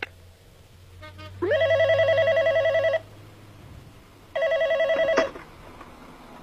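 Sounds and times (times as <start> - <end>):
electronic telephone ring tone in a recorded call to a hotel: 1.5 - 3.1, 4.3 - 5.4.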